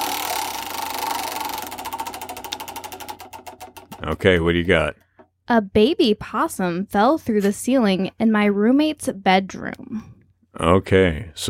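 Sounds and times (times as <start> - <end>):
prize wheel spinning during a party guessing game: 0.0 - 4.8
speech: 4.0 - 11.4.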